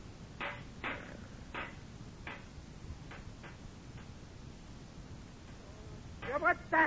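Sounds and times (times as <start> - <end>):
steady hiss of noise: 0.0 - 6.8
rock hammering a bent metal fire grate straight: 0.3 - 4.2, 6.2 - 6.6
speech: 6.4 - 6.8.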